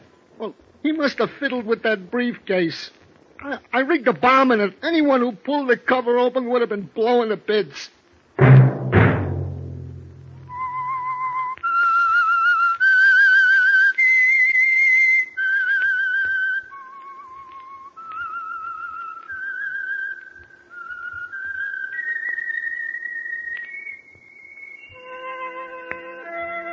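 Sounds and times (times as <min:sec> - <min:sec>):
speech: 0:00.4 - 0:08.5
low thud: 0:08.4 - 0:10.8
person whistling a radio program theme melody: 0:10.4 - 0:25.1.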